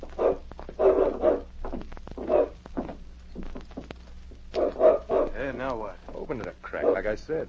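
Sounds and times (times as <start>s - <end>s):
dog barking behind a door: 0.0s - 1.5s, 2.2s - 2.6s, 4.5s - 5.6s, 6.7s - 7.2s
scuffling: 0.0s - 6.3s
speech: 5.6s - 7.4s.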